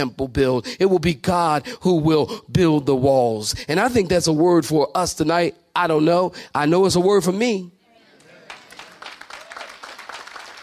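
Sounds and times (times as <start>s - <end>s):
speech: 0.0s - 7.8s
small group clapping hands: 8.1s - 10.6s.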